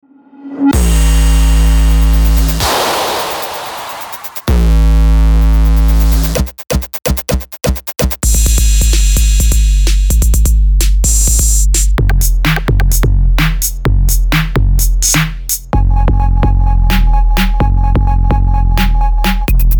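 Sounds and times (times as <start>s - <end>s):
analog 808 drum machine beat: 0.8s - 19.7s.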